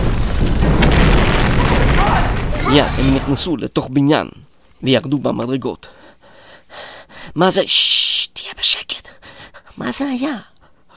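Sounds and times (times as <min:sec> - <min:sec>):
explosions booming during an attack: 0:00.0 - 0:03.6
speech: 0:02.7 - 0:06.0, 0:06.7 - 0:09.2, 0:09.8 - 0:10.5.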